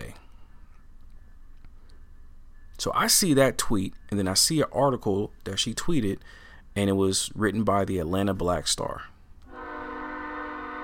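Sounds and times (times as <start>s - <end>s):
speech: 2.8s - 9.1s
train horn blaring at night: 9.5s - 10.8s.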